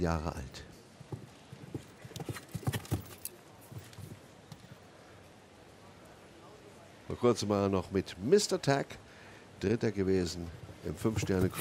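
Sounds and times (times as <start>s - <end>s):
speech: 0.0s - 0.7s, 7.2s - 9.0s, 9.6s - 11.5s
show-jumping horse hooves clip-clopping beneath a rider at an equestrian event: 1.0s - 4.6s.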